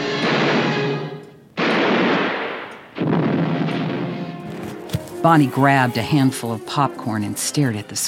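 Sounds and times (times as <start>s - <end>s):
gunshots in a film scene: 0.2s - 5.2s
speech: 5.2s - 8.0s.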